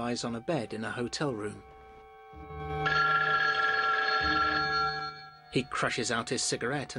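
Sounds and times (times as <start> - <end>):
speech: 0.0 - 1.7, 5.5 - 6.9
telephone bell ringing in a hotel room: 2.4 - 5.8.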